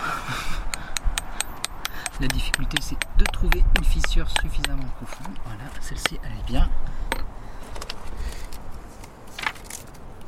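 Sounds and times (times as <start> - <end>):
hammer driving a nail into rock: 0.7 - 6.5
speech: 2.2 - 7.3.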